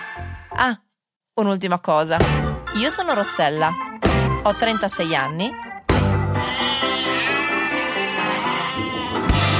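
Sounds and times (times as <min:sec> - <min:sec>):
speech: 0:00.6 - 0:03.8, 0:04.4 - 0:05.6
goat bleating: 0:06.4 - 0:09.5.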